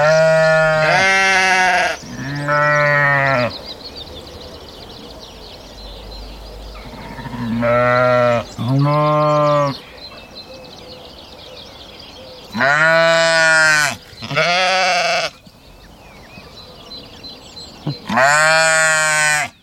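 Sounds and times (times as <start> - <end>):
sheep bleating: 0.0 - 3.5, 6.8 - 9.8, 12.5 - 15.4, 17.9 - 19.6.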